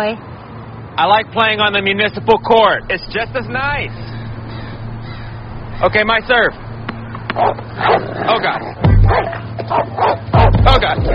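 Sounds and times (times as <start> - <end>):
speech: 0.0 - 0.3, 1.0 - 4.1, 5.8 - 6.6, 7.4 - 11.1
dog barking and yipping for a tennis ball: 7.4 - 8.1, 9.1 - 10.6.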